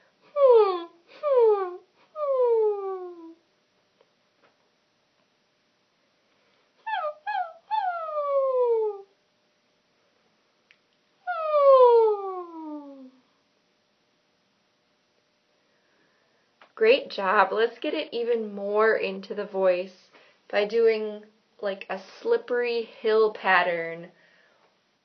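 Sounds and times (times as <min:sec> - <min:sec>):
human voice imitating a puppy whine as a vocal exercise: 0:00.3 - 0:03.4, 0:06.8 - 0:09.2, 0:11.2 - 0:13.2
speech: 0:16.8 - 0:24.2.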